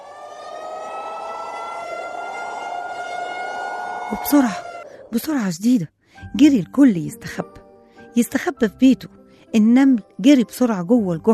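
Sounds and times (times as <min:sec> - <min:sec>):
warning siren wailing from a colony during a severe storm: 0:00.0 - 0:05.5
speech: 0:04.1 - 0:07.6, 0:08.2 - 0:11.3.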